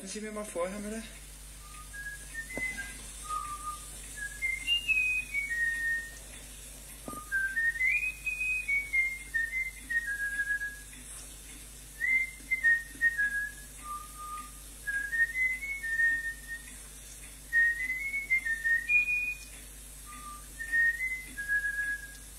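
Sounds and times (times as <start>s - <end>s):
faint low hum: 0.0s - 22.3s
speech: 0.1s - 1.2s
trainer whistling a tune to bullfinch: 1.6s - 6.2s, 7.1s - 10.9s, 12.0s - 16.7s, 17.5s - 22.2s.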